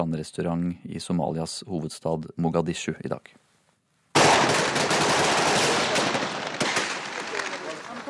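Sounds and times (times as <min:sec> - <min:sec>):
speech: 0:00.0 - 0:03.5
gunfire salvos on a beach: 0:04.2 - 0:08.0.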